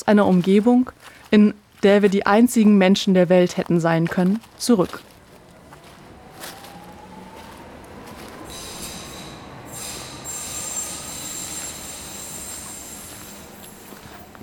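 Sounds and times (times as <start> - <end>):
speech: 0.0 - 5.1
train running along the rails heard from inside the train: 5.2 - 14.4
faint tonal whines: 5.3 - 14.4
high metallic train wheel squeals: 8.5 - 14.4.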